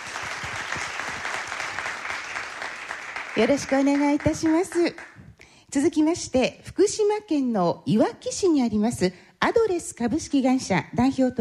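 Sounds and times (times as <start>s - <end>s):
audience applause welcoming a guest: 0.0s - 5.1s
speech: 3.4s - 11.3s.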